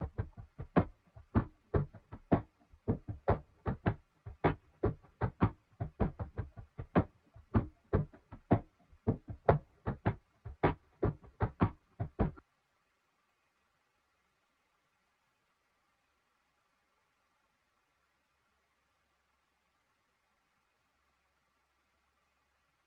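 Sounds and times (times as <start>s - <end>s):
percussion loop in F minor: 0.0s - 12.4s.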